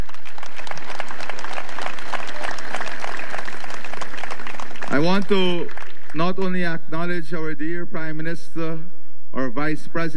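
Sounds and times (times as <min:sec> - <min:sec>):
large crowd applauding: 0:00.0 - 0:06.6
speech: 0:05.0 - 0:10.1.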